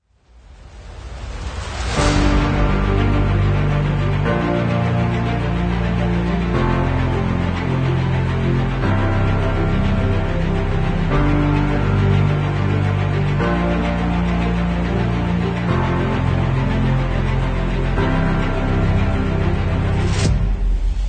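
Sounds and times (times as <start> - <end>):
epic music: 0.5 - 21.0.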